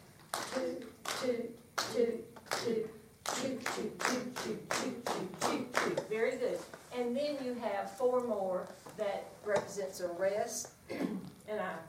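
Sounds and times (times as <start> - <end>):
hands clapping a rhythm: 0.2 - 6.1
speech: 7.3 - 10.8, 11.5 - 11.8.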